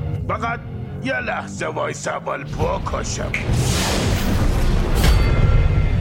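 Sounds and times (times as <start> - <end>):
speech: 0.3 - 3.8
bomb explosion: 3.3 - 6.0.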